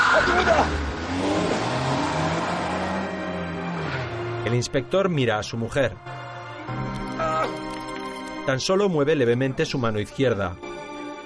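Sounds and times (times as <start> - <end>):
off-road vehicle engine roaring as it accelerates and drives away: 0.0 - 4.8
speech: 0.2 - 1.5, 4.5 - 6.9, 8.5 - 10.7.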